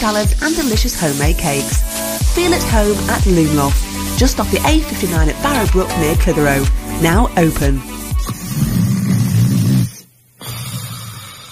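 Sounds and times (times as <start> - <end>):
speech: 0.0 - 8.0
person snoring while asleep: 7.9 - 11.5.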